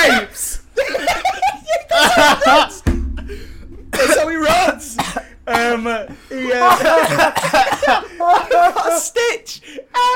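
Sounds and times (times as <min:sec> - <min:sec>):
laughter: 0:00.0 - 0:09.2
person coughing fit with strained wheezes: 0:04.0 - 0:08.3
speech: 0:06.1 - 0:07.4.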